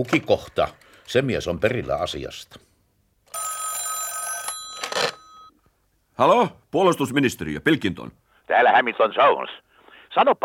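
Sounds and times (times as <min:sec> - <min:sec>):
speech: 0:00.0 - 0:02.7, 0:06.2 - 0:10.4
telephone ringing as a call is placed: 0:03.3 - 0:05.6.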